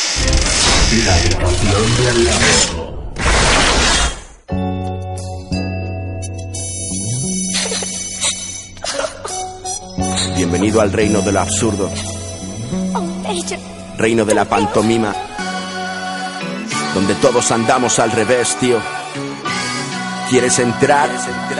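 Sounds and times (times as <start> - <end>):
chaotic effects, sweeping tones and noisy crashes: 0.2 - 4.5
speech: 0.9 - 3.0, 10.4 - 12.2, 13.3 - 15.3, 16.9 - 19.3, 20.3 - 21.5
instrumental music track on the radio with sustained notes: 4.5 - 17.0.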